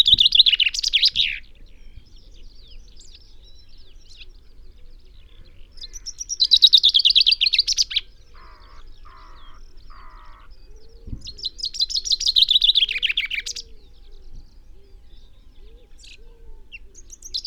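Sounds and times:
Common chaffinch singing: 0.0s - 17.4s
low thump: 11.0s - 11.5s.

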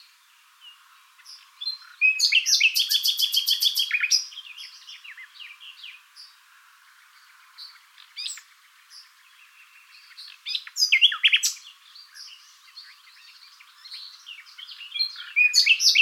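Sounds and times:
common nightingale Luscinia megarhynchos singing: 0.0s - 15.9s.

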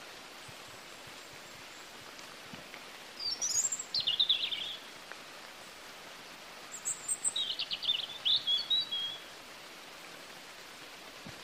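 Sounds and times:
steady background hiss: 0.0s - 11.4s
European robin Erithacus rubecula singing: 3.2s - 4.9s, 6.7s - 9.2s.

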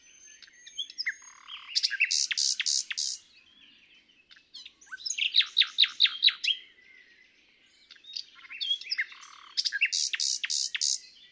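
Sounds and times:
common nightingale song phrase: 0.0s - 11.3s
faint chirping: 0.0s - 11.3s.

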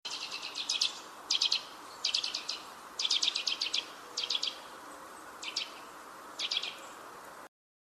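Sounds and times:
Eurasian nuthatch Sitta europaea rattling calls: 0.1s - 4.6s, 5.4s - 5.8s, 6.4s - 6.8s.

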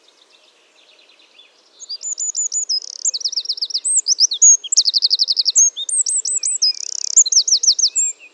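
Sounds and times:
Eurasian wren Troglodytes troglodytes singing: 1.8s - 8.1s.

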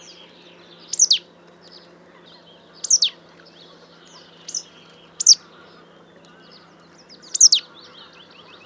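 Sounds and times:
marsh tit Poecile palustris calls sweeping downward: 0.0s - 8.6s.

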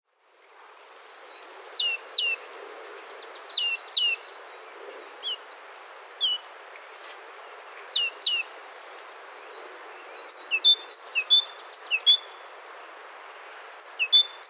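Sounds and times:
soft background hiss: 0.8s - 14.4s
great tit Parus major calling: 1.8s - 2.4s, 3.2s - 12.5s, 13.4s - 14.4s.

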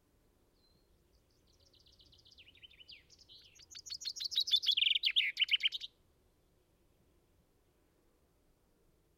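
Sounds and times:
common chaffinch Fringilla coelebs song: 0.5s - 6.0s.

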